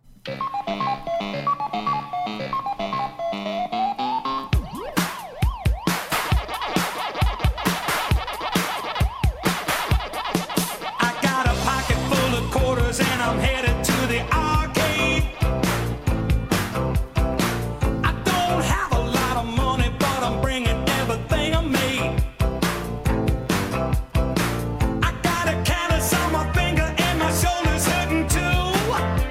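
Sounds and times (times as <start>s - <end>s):
electronic bleeps and arcade-style game effects: 0.3s - 6.7s
upbeat 1980s novelty synth-pop song: 0.3s - 29.2s.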